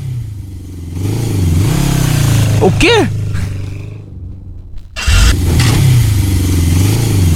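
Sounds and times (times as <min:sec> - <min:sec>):
motorcycle with loud exhaust roaring past: 0:00.0 - 0:07.3
person asking a short question: 0:02.6 - 0:03.2
speech: 0:02.6 - 0:03.2.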